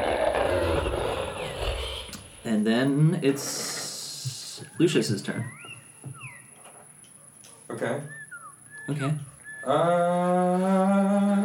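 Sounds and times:
person roaring in a deep growling voice imitating a monster: 0.0 - 2.4
speech: 2.5 - 3.7, 4.8 - 5.6, 7.8 - 8.2, 8.9 - 11.4.

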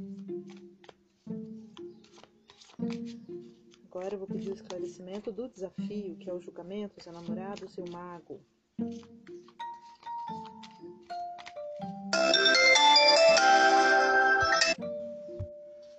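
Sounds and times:
speech: 4.0 - 9.1
melodic ringtone of an incoming phone call: 9.6 - 15.9.

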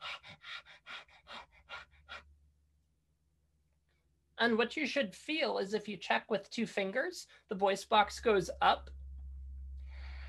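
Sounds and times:
person imitating a small tired dog panting: 0.0 - 2.4
speech: 4.4 - 9.0.

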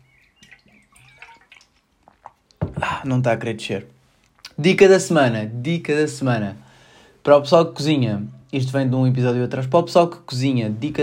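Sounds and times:
person drinking water: 0.1 - 3.2, 4.1 - 4.6
speech: 3.0 - 4.0, 4.6 - 11.0.

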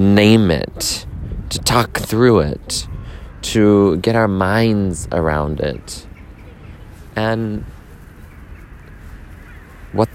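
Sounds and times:
speech: 0.0 - 6.1, 7.2 - 7.8, 10.0 - 10.1
geese honking and calling: 2.8 - 10.1.

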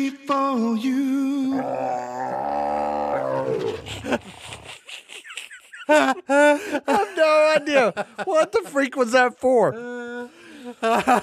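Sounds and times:
speech: 0.0 - 2.6, 3.5 - 5.0, 5.9 - 11.2
big cat roaring: 1.5 - 4.3
laughter: 3.4 - 8.9, 10.2 - 11.2.

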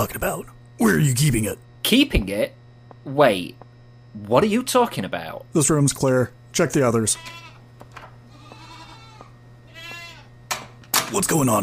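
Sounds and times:
speech: 0.0 - 3.6, 4.2 - 7.5, 11.1 - 11.6
steady low hum: 0.0 - 11.6
goats bleating: 6.8 - 10.3.

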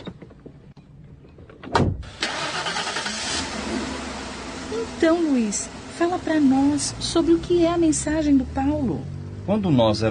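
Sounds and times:
car door slamming shut: 1.7 - 2.2
car engine cranking and catching, then idling: 1.7 - 10.1
speech: 5.0 - 10.1.

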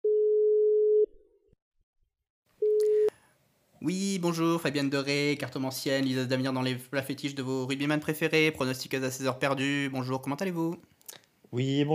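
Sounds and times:
short telephone line tone: 0.0 - 1.1, 2.6 - 3.1
speech: 3.8 - 11.9.

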